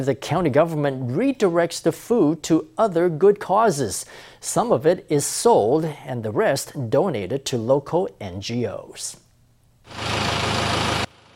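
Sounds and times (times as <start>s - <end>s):
speech: 0.0s - 9.2s, 9.9s - 10.6s
delivery truck engine idling: 9.9s - 11.3s.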